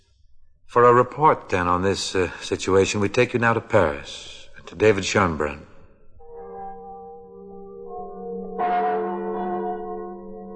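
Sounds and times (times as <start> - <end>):
speech: 0.7 - 5.7
large cathedral bells tolling: 6.3 - 10.5.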